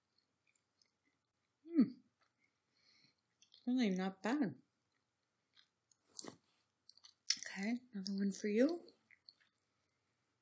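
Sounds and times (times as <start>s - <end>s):
chewing food with crunchy bites: 0.0s - 3.8s, 4.6s - 10.4s
speech: 3.7s - 4.6s, 7.6s - 8.9s.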